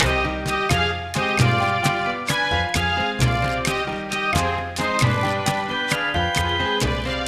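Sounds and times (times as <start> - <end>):
Afro Cuban danzon rhythm section: 0.0 - 7.2.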